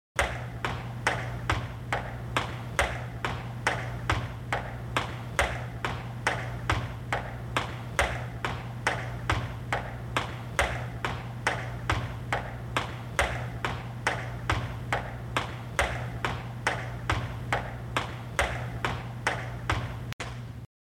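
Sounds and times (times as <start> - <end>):
woman's high heel footsteps: 0.2 - 20.2.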